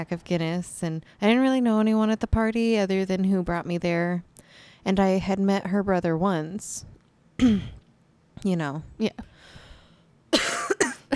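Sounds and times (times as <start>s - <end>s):
speech: 0.0s - 7.8s, 8.4s - 9.6s
person coughing in a rough fit: 7.4s - 7.8s, 10.4s - 11.1s.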